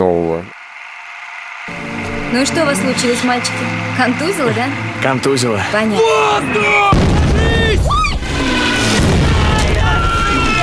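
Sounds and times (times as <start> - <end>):
speech: 2.3 - 7.2
people shouting: 5.6 - 10.6
loud explosion in a battle scene: 6.9 - 10.3.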